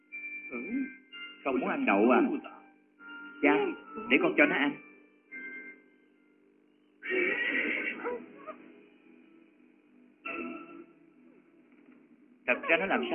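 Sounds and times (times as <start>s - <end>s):
speech: 0.5s - 2.6s, 3.4s - 4.8s, 12.5s - 13.1s
excited horse neighing: 7.0s - 8.6s.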